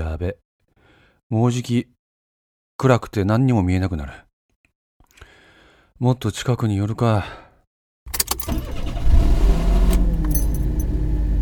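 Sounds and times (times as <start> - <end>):
speech: 0.2 - 0.4, 1.3 - 2.0, 2.8 - 4.2, 6.0 - 7.4, 8.4 - 8.8
car engine cranking, catching and idling: 8.2 - 11.3
sharp clicks and key rattles: 10.2 - 10.9.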